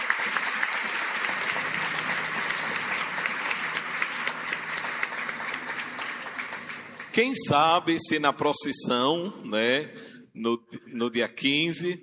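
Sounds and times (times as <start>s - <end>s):
audience applause at a night event in Tobias Barreto: 0.0s - 8.0s
speech: 7.2s - 12.0s.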